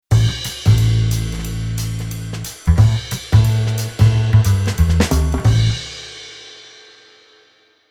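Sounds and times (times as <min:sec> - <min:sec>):
jazz bass arrangement: 0:00.1 - 0:06.0.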